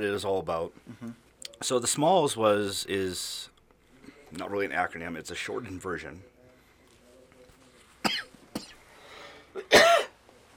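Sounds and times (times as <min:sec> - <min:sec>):
speech: 0:00.0 - 0:03.5, 0:04.3 - 0:06.3
person coughing: 0:08.1 - 0:08.8, 0:09.5 - 0:10.2.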